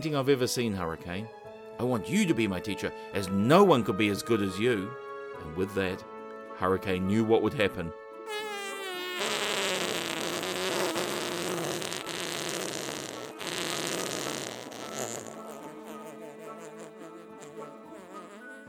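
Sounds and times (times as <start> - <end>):
speech: 0.0 - 8.5
buzzy fart sound effect: 8.3 - 18.6.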